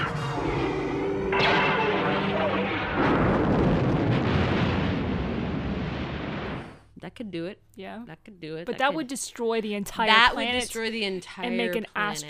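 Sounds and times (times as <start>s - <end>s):
space superweapon tonal charging whine: 0.0s - 4.3s
space superweapon roaring rumbling blast: 0.0s - 6.8s
speech: 7.2s - 12.2s.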